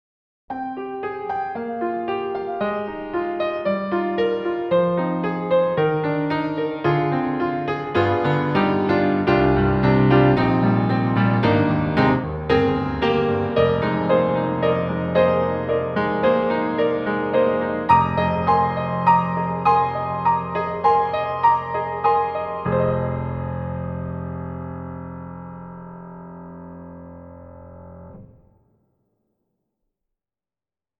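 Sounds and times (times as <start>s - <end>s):
Steinway D grand piano playing, binaural recording: 0.5s - 28.4s.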